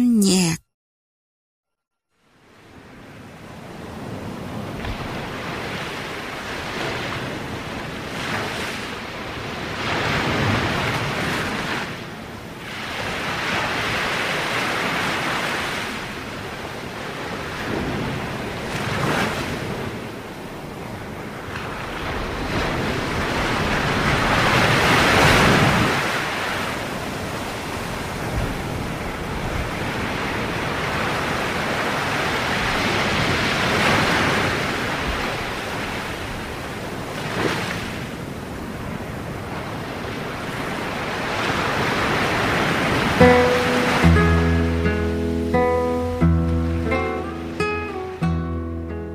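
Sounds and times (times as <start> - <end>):
speech: 0.0 - 0.6
sea waves washing against the shore on a calm night: 2.3 - 49.1
melodic music passage: 43.2 - 49.1.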